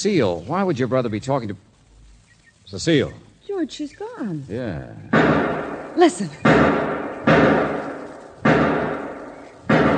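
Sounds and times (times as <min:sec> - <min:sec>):
speech: 0:00.0 - 0:01.7, 0:02.7 - 0:07.7
gunshots fired in a shed: 0:05.1 - 0:09.9.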